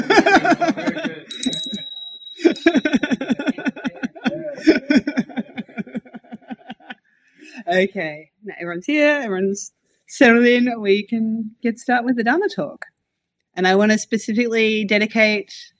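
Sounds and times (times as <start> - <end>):
laughter: 0.0 - 7.9
bell struck with clear high ring: 1.2 - 5.8
speech: 7.7 - 12.9, 13.6 - 15.7.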